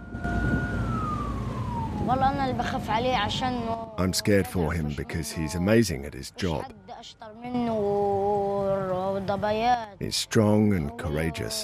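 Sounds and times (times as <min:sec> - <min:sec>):
low rumble: 0:00.0 - 0:05.3
ambulance siren wailing on a quiet street at night: 0:00.0 - 0:05.8
speech: 0:02.1 - 0:11.6.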